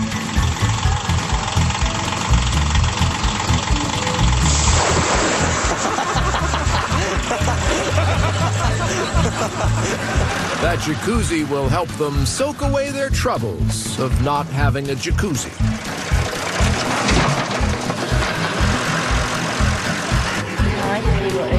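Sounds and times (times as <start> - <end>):
tractor engine rumbling with a rough knocking idle: 0.0 - 21.5
laughter: 5.4 - 11.9
speech: 10.8 - 15.7.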